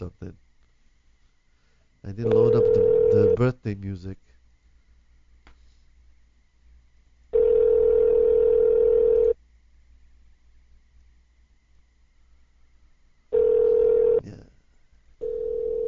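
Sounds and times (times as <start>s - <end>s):
speech: 2.1s - 4.4s
outgoing telephone call ring tone: 2.2s - 3.4s, 7.4s - 9.4s, 13.3s - 14.2s, 15.2s - 15.8s.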